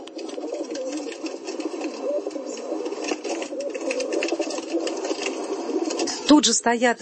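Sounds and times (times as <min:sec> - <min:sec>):
pigeons held by pigeon breeders on a high hill cooing: 0:00.0 - 0:06.4
speech: 0:06.3 - 0:07.0.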